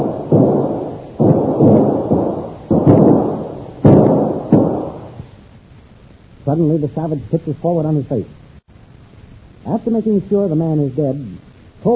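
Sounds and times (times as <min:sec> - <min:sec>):
gunshots exchanged between two shooters: 0:00.0 - 0:05.2
speech: 0:06.5 - 0:08.4, 0:09.7 - 0:11.9.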